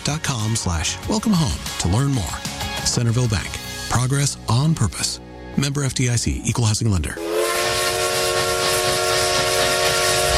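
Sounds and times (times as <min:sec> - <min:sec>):
speech: 0:00.1 - 0:07.3
vintage steam train whistle in the Connecticut River Valley: 0:07.2 - 0:10.3.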